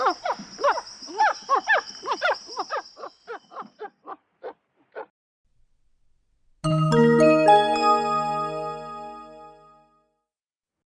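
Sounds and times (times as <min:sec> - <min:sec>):
squirrel monkey sharp chirping barks: 0:00.0 - 0:05.1
sustained bright chime-like tone: 0:06.6 - 0:09.4.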